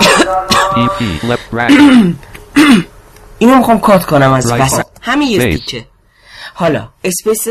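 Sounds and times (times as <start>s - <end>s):
rough coughing: 0.0s - 2.9s
speech: 0.3s - 5.9s, 6.5s - 7.5s.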